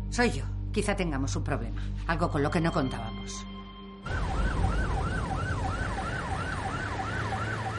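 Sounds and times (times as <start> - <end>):
speech: 0.1 - 3.5
police car siren wailing in up-and-down yelps: 4.0 - 7.7
low rumble of police car engine and road noise: 4.1 - 7.7.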